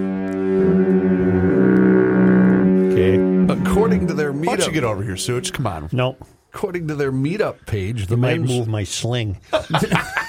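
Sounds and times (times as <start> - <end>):
deep double foghorn blaring in Duluth: 0.0 - 6.4
speech: 3.8 - 10.2
laughter: 9.4 - 10.2.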